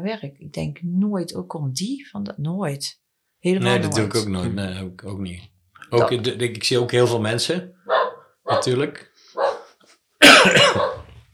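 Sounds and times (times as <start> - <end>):
speech: 0.0 - 9.1
dog barking: 7.9 - 8.8, 9.4 - 9.8, 10.6 - 11.2.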